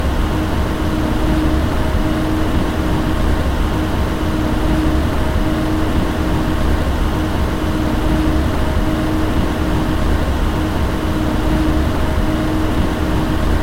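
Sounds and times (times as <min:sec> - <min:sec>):
high speed fan: 0:00.0 - 0:13.6.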